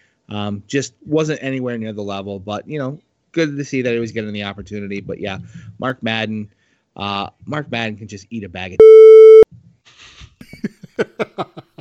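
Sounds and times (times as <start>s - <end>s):
speech: 0.3s - 9.2s
short loud electronic censor beep: 8.8s - 9.5s.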